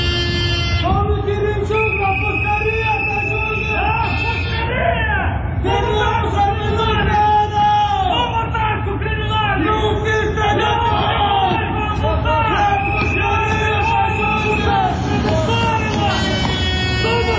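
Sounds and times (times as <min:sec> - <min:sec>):
dense crowd of protesters shouting and chanting outdoors at parliament back entrance: 0:00.0 - 0:17.3
steady rumble of traffic-like noise: 0:00.0 - 0:17.3.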